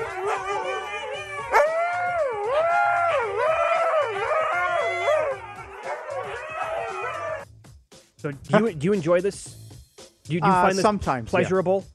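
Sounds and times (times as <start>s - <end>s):
husky howling: 0.0s - 7.4s
speech: 8.2s - 9.6s, 10.3s - 11.9s.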